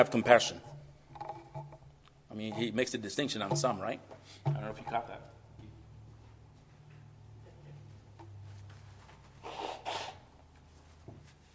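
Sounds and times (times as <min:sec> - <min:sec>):
speech: 0:00.0 - 0:00.7, 0:02.3 - 0:05.4
low steady hum: 0:00.0 - 0:09.4
person blowing their nose: 0:09.4 - 0:10.3.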